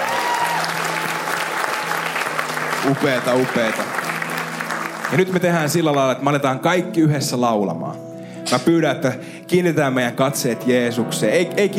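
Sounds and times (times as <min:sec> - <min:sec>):
crowd clapping: 0:00.0 - 0:06.4
speech: 0:02.8 - 0:04.0, 0:05.1 - 0:11.7.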